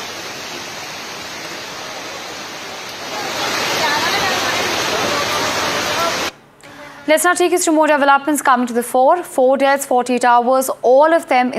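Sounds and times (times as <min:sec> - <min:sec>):
rushing floodwater of the swollen Kosi River at Ramnagar after relentless rainfall: 0:00.0 - 0:06.4
speech: 0:07.1 - 0:11.5.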